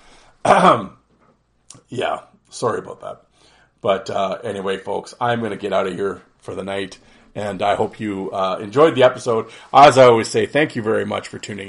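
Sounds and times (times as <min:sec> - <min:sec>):
person with a sore throat clearing throat: 0:00.4 - 0:01.1
speech: 0:00.5 - 0:01.0, 0:01.9 - 0:11.6.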